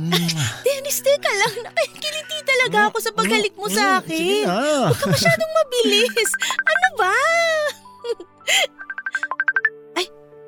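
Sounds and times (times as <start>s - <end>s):
speech: 0.0s - 8.8s
laughter: 4.9s - 6.1s
phone ringtone from incoming video call: 6.0s - 6.9s, 8.7s - 9.7s.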